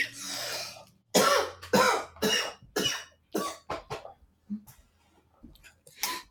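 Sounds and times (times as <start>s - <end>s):
sick person coughing harshly: 1.2s - 4.1s.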